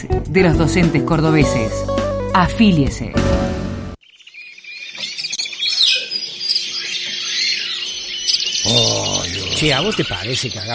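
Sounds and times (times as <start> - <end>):
speech: 0.0 - 3.4, 9.6 - 10.7
parrot in a kitchen chirping and squawking: 4.3 - 10.7.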